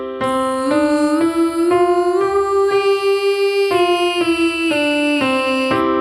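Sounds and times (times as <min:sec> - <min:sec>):
voices singing five-note suspended chord on oo and ee: 0:00.2 - 0:05.9.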